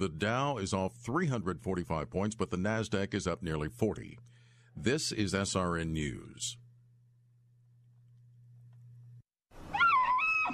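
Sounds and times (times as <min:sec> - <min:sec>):
speech: 0:00.0 - 0:06.6
woman's anguished wail as RV sewage tank spews over her camper: 0:09.7 - 0:10.5.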